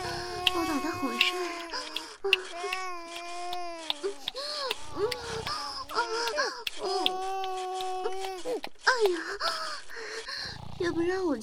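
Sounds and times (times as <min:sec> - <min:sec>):
infant crying after waking: 0:00.0 - 0:09.4
speech: 0:02.2 - 0:02.8, 0:10.8 - 0:11.4.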